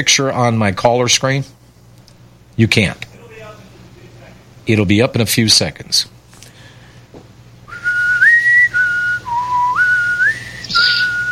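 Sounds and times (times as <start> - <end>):
speech: 0.0 - 1.6, 2.6 - 3.1, 4.7 - 6.1
faint low hum: 0.0 - 11.2
person whistling a jaunty game-show waiting tune: 7.7 - 11.2.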